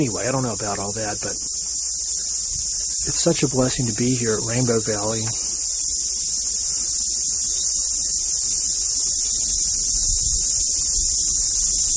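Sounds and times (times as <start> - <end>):
speech: 0.0 - 1.6, 3.0 - 5.5
cicadas buzzing: 0.0 - 11.9.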